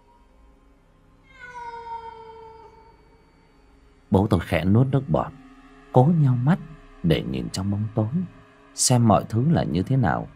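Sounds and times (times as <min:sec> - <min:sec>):
cat yowling: 0:01.2 - 0:03.5
speech: 0:04.1 - 0:05.4, 0:06.0 - 0:10.3.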